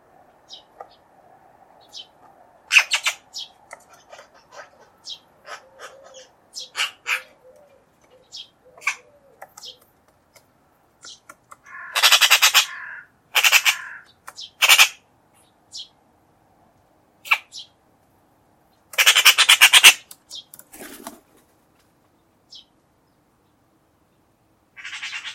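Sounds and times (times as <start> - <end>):
harsh squawking bird calls: 1.8 - 9.8, 11.0 - 16.0, 17.2 - 17.8, 18.9 - 21.0, 24.8 - 25.3.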